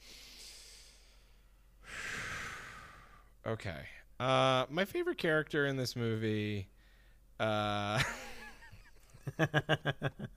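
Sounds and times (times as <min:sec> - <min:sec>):
quick deep calming breath: 0:00.0 - 0:03.4, 0:06.7 - 0:07.3
speech: 0:03.4 - 0:06.7, 0:07.4 - 0:08.2, 0:09.2 - 0:10.3.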